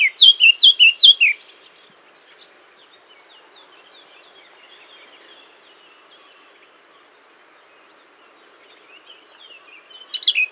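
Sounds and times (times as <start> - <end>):
Eurasian blackcap Sylvia atricapilla whistled phrases: 0.0 - 1.4, 10.2 - 10.4.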